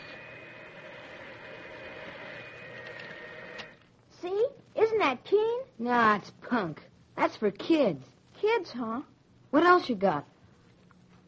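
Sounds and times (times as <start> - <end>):
toy electric model train motor whirring with a rumbling clatter: 0.0 - 3.8
speech: 4.2 - 10.3.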